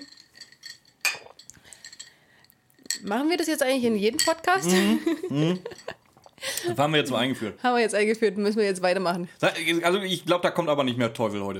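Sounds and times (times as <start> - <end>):
glasses clinking in a toast: 0.0 - 3.3, 4.0 - 6.1
speech: 3.0 - 6.0, 6.6 - 11.5
laughter: 4.7 - 5.9.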